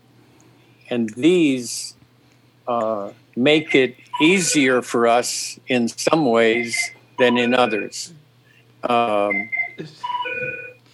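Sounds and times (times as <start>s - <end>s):
speech: 0.9s - 2.0s, 2.7s - 8.2s, 8.8s - 10.6s
telephone with bright electronic ringtone: 6.5s - 7.9s, 9.3s - 10.8s.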